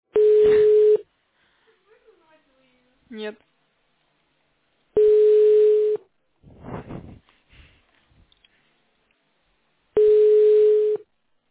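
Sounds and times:
telephone ringback tones with no answer: 0:00.2 - 0:01.0, 0:05.0 - 0:06.0, 0:10.0 - 0:11.0
speech: 0:03.2 - 0:03.5.

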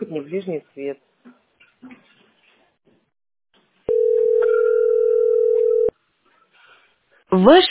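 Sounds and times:
faint indistinct noise: 0:00.0 - 0:07.6
speech: 0:00.1 - 0:02.0, 0:07.3 - 0:07.6
telephone ringback tone on an unanswered call: 0:03.9 - 0:05.9.

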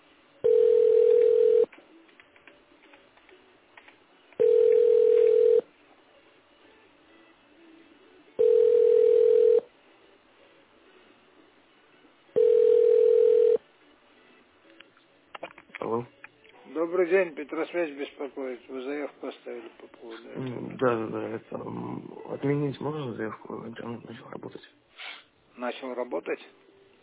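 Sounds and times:
faint noise: 0:00.0 - 0:27.0
telephone ringback tone while a call is being placed: 0:00.4 - 0:01.7, 0:04.4 - 0:05.7, 0:08.4 - 0:09.7, 0:12.4 - 0:13.6
speech: 0:17.0 - 0:24.8, 0:25.6 - 0:27.0.

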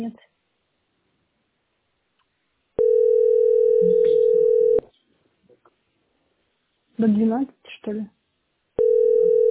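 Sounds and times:
speech: 0:00.0 - 0:00.3, 0:07.0 - 0:08.2
landline telephone dial tone while calling a post office: 0:02.8 - 0:04.8, 0:08.8 - 0:09.5.

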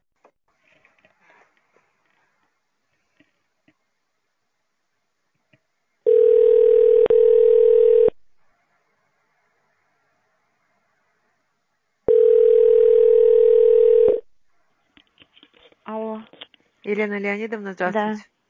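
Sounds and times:
telephone line tones during a call to an automated switchboard: 0:06.1 - 0:08.2, 0:12.1 - 0:14.2
speech: 0:16.9 - 0:18.4.

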